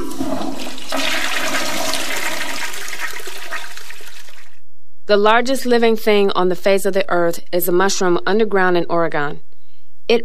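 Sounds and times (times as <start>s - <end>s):
toilet flushing: 0.0s - 4.6s
speech: 5.1s - 9.5s.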